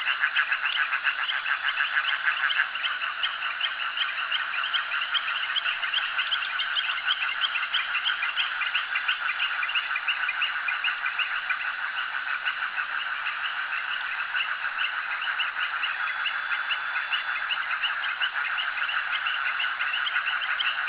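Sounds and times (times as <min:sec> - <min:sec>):
frogs calling at a jetty: 0:00.0 - 0:20.8.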